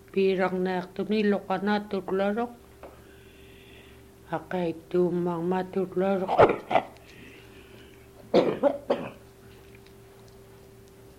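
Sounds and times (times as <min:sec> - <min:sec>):
faint steady hum: 0:00.0 - 0:11.1
speech: 0:00.2 - 0:02.6, 0:04.3 - 0:06.9
person coughing: 0:08.3 - 0:09.2.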